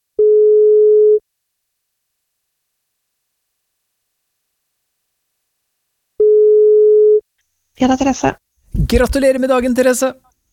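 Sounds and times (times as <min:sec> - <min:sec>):
telephone ringback tone while placing a call: 0:00.2 - 0:01.2, 0:06.2 - 0:07.2
speech: 0:07.8 - 0:10.5.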